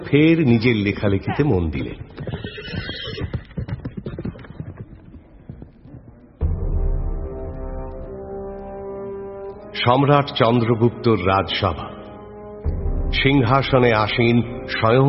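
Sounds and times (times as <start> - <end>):
speech: 0.0 - 2.9, 9.8 - 11.9, 13.2 - 15.0
horse hooves clopping as a rider mounts a horse outside a cottage: 0.8 - 6.5
horse whinnying: 1.3 - 4.9.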